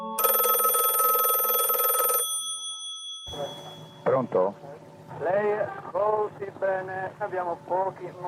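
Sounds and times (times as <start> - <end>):
telephone bell ringing: 0.2 - 4.3
speech: 4.2 - 4.7, 5.2 - 8.2.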